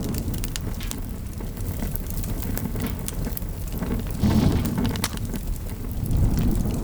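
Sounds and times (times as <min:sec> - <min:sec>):
car fire burning: 0:00.0 - 0:06.8.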